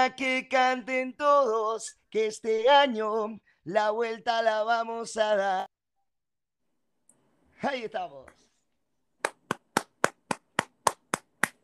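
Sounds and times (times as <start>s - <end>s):
speech: 0.0s - 5.7s, 7.6s - 8.4s
sharp hand claps: 9.2s - 11.6s.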